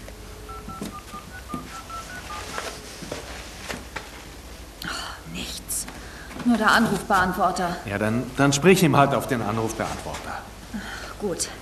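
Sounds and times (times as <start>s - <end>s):
telephone redial DTMF dialing beeps: 0.5s - 2.9s
light handling sounds: 0.6s - 4.3s
speech: 6.5s - 10.5s, 11.2s - 11.6s.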